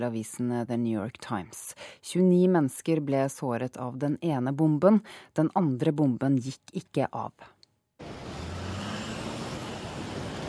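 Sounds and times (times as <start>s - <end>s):
speech: 0.0s - 8.2s
busy city street traffic in New York: 8.0s - 10.4s.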